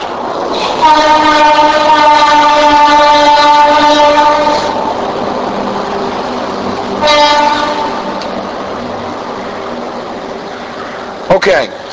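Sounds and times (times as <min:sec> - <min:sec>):
steady rumble of a passing train: 0:00.0 - 0:11.9
train horn blast: 0:00.7 - 0:04.8, 0:07.0 - 0:08.2
speech: 0:00.8 - 0:01.4, 0:11.4 - 0:11.8.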